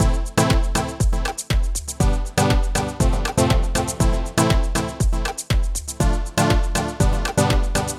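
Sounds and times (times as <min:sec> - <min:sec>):
basic EDM echo: 0:00.0 - 0:07.9.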